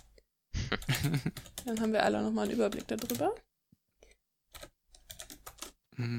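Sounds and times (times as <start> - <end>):
laughter: 0.6 - 1.4
typing notes on a computer keyboard: 0.8 - 3.4, 4.5 - 5.8
speech: 1.0 - 3.5, 6.0 - 6.1.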